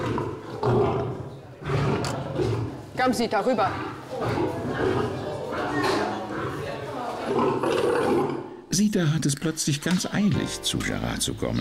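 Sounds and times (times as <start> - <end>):
lion roaring in deep rumbling bursts: 0.0 - 8.7
speech: 3.0 - 5.0, 8.8 - 11.5.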